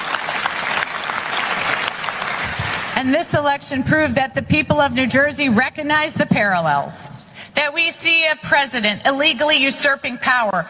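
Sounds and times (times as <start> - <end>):
audience applauding at a political speech: 0.0 - 3.0
speech: 3.0 - 7.0, 7.6 - 10.6.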